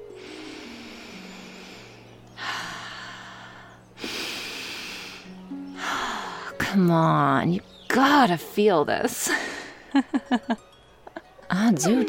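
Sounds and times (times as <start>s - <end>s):
person taking slow deep breaths to relax: 0.0s - 6.6s
speech: 6.7s - 10.7s, 11.5s - 12.0s.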